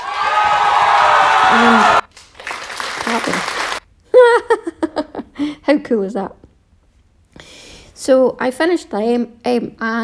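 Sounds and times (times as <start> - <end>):
crowd cheering sound effect with whoops and applause: 0.0 - 3.8
speech: 5.7 - 6.4, 8.0 - 10.0.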